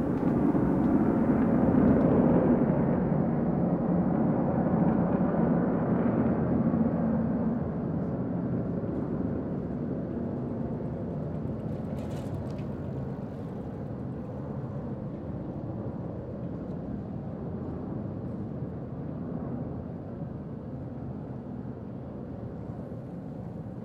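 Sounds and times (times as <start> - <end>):
airplane roaring overhead: 0.0 - 23.8.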